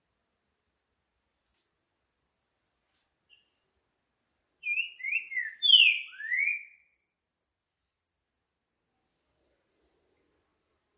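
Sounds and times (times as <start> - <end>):
green-winged saltator singing a rich whistled phrase: 4.6 - 7.0.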